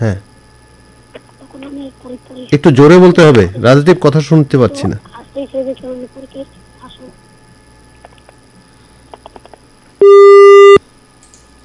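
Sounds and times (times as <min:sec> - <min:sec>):
speech: 0:00.0 - 0:00.3, 0:01.2 - 0:07.2, 0:10.0 - 0:10.8
phone line disconnect tone after a call is cut off: 0:10.0 - 0:10.8.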